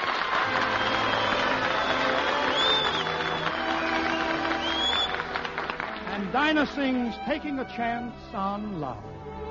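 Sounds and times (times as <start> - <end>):
large audience cheering: 0.0 - 6.5
large audience clapping: 0.0 - 7.7
whistles from the audience: 0.5 - 5.3
speech: 6.3 - 9.4.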